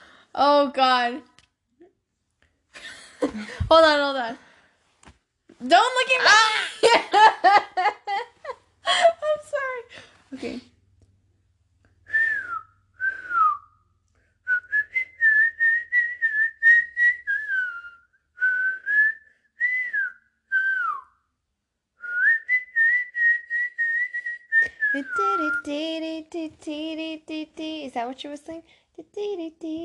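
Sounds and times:
speech: 0.4s - 1.3s, 2.8s - 4.4s, 5.6s - 8.3s, 8.9s - 10.7s, 25.7s - 29.8s
person whistling the beat of a song: 12.1s - 21.2s, 22.0s - 25.6s.

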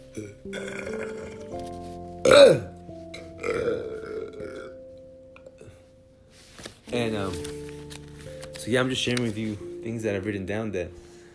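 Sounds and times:
person burping: 0.1s - 1.6s, 2.2s - 4.8s
speech: 0.2s - 1.0s, 2.3s - 2.7s, 8.7s - 11.1s.

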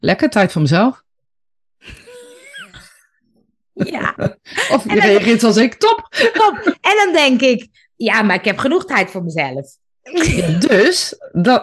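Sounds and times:
speech: 0.0s - 1.0s, 1.8s - 2.0s, 3.8s - 11.6s
laughter: 1.9s - 3.0s, 4.2s - 6.9s, 10.1s - 11.2s
person coughing with a wheezy strained tone: 1.9s - 3.0s, 10.2s - 11.0s.

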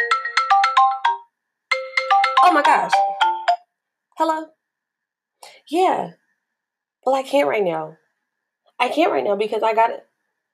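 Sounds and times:
phone ringtone chiming melodic phrase: 0.0s - 3.7s
speech: 2.5s - 3.1s, 4.2s - 4.6s, 5.4s - 6.2s, 7.0s - 8.0s, 8.8s - 10.1s.

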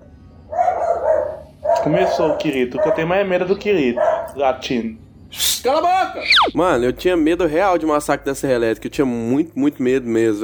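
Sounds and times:
dog barking: 0.5s - 3.2s, 3.9s - 4.4s
speech: 1.8s - 10.4s.

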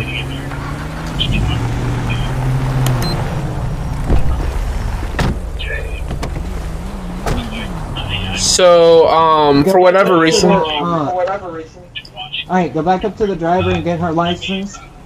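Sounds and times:
video game police car engine hum: 0.0s - 15.0s
clicks and thumps: 3.9s - 7.7s
speech: 8.6s - 11.9s, 12.5s - 14.9s.

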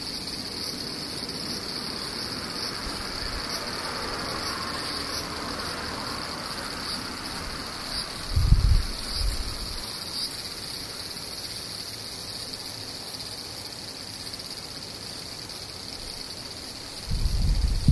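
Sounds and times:
cicadas droning: 0.0s - 17.9s.

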